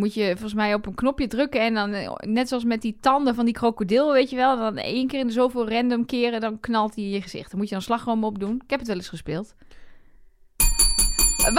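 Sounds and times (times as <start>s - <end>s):
speech: 0.0s - 9.8s
metal hotel desk bell being struck: 10.6s - 11.5s.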